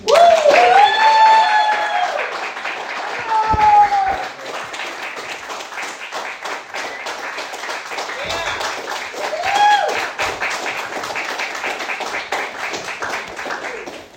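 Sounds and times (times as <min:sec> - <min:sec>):
voices whooping and cheering: 0:00.0 - 0:02.4, 0:03.1 - 0:04.4, 0:09.2 - 0:10.1
crowd at a meeting applauding a speaker: 0:00.0 - 0:14.1.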